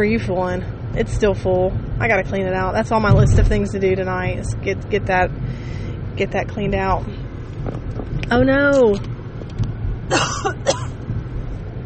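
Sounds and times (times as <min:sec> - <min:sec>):
speech: 0:00.0 - 0:09.1
steady low rumble: 0:00.0 - 0:11.8
person with allergies coughing: 0:10.1 - 0:11.0.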